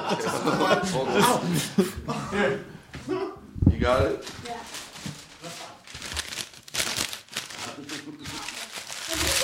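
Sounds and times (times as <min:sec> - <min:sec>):
laughter: 0:00.0 - 0:02.7
speech: 0:00.1 - 0:02.8
paper crinkling and rustling as it is folded for origami: 0:04.2 - 0:09.4.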